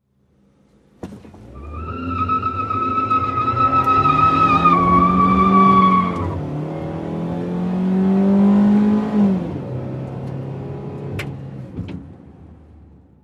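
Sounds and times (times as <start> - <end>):
small compact car accelerating and peeling in: 1.4 - 9.4.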